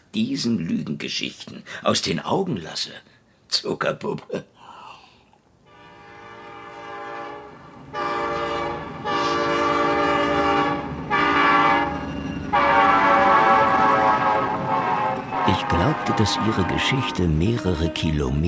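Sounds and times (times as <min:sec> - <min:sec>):
speech: 0:00.1 - 0:04.5, 0:16.2 - 0:18.4
passenger train rumbling along on rails: 0:06.3 - 0:18.4.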